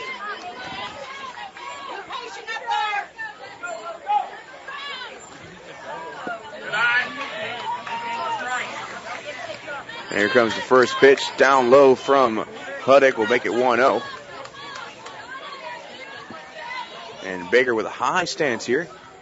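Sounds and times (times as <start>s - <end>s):
crowd cheering and chanting at baseball game: 0.0s - 19.1s
speech: 10.2s - 14.2s, 17.3s - 19.0s.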